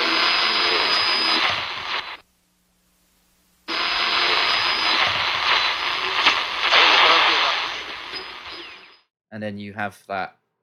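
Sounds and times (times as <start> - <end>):
radio static: 0.0 - 2.2, 3.7 - 9.0
speech: 9.4 - 10.4.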